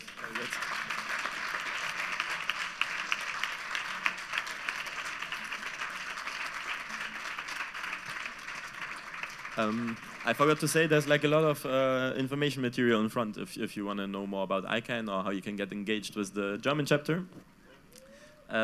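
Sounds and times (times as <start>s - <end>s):
crowd applauding: 0.0s - 11.6s
speech: 9.6s - 17.5s.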